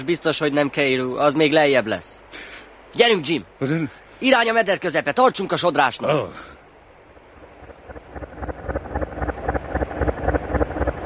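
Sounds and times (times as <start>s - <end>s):
speech: 0.0s - 2.2s, 2.9s - 6.5s
rushing river water: 0.0s - 11.0s
wind: 0.0s - 11.0s
large engine-driven steamboat rumbling and thumping on a river: 6.6s - 11.0s.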